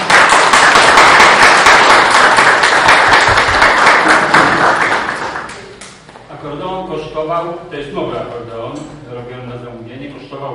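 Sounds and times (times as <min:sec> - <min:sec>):
crowd applauding: 0:00.0 - 0:05.9
speech: 0:07.0 - 0:08.9.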